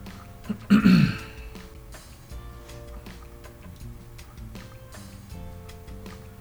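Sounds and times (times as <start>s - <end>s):
throat-clearing cough caused by allergies: 0.5s - 1.6s.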